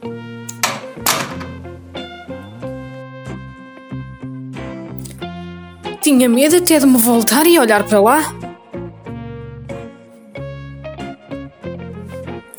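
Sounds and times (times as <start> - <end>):
wardrobe door closing: 0.5 - 1.6
speech: 6.0 - 8.4.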